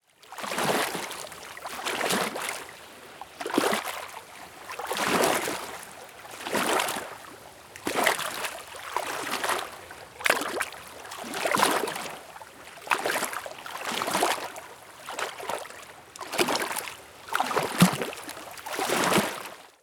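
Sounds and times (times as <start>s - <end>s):
lake waves lapping on the shore: 0.2s - 19.8s.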